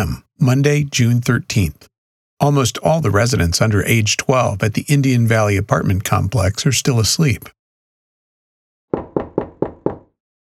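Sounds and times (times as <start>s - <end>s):
speech: 0.0s - 7.6s
firm knocks on an apartment door: 8.9s - 10.2s.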